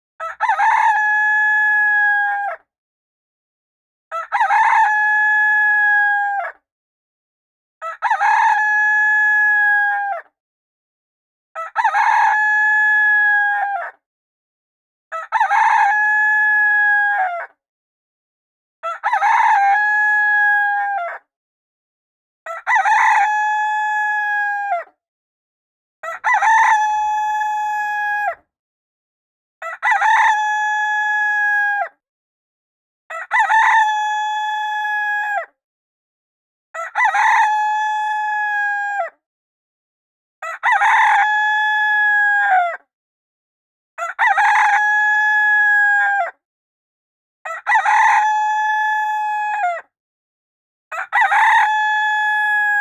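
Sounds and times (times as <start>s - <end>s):
rooster: 0.2s - 2.7s, 4.1s - 6.7s, 7.8s - 10.4s, 11.5s - 14.0s, 15.1s - 17.6s, 18.8s - 21.3s, 22.4s - 25.0s, 26.0s - 28.5s, 29.6s - 32.0s, 33.1s - 35.6s, 36.7s - 39.2s, 40.4s - 42.9s, 44.0s - 46.4s, 47.4s - 50.0s, 50.9s - 52.7s.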